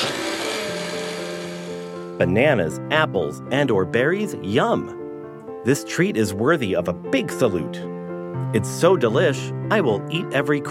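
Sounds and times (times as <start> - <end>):
blender whirring: 0.0 - 2.2
speech: 2.2 - 5.0, 5.6 - 10.7.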